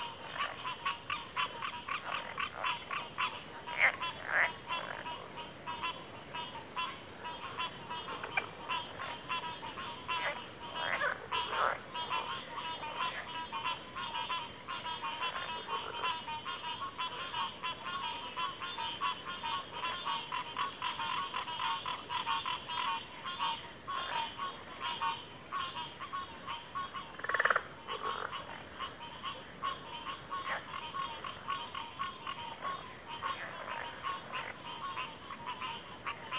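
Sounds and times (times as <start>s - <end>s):
chorus of crickets in a backwater: 0.0s - 36.3s.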